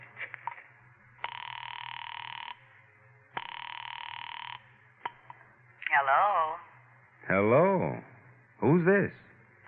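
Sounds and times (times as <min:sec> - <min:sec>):
telephone ringing on the other end through the receiver: 0:01.2 - 0:02.6, 0:03.4 - 0:04.7
speech: 0:06.0 - 0:06.6, 0:07.3 - 0:09.2.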